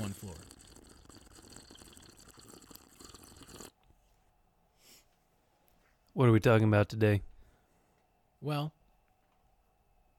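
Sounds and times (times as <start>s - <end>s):
tea pouring into a cup: 0.0s - 3.8s
speech: 6.2s - 7.3s, 8.4s - 8.8s.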